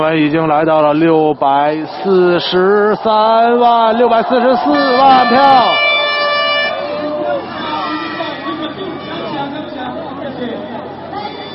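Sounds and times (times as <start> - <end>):
speech: 0.0 - 5.9
crowd chatter at a street celebration: 0.0 - 11.5
air horn blasts at a street election celebration in Taiwan: 4.5 - 9.8.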